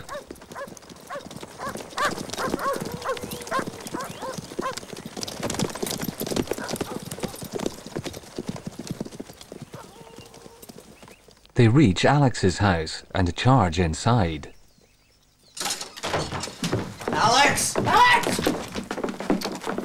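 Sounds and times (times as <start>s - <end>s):
several horses' hooves clip-clopping at a trot: 0.0s - 11.6s, 15.6s - 19.8s
speech: 11.6s - 14.5s.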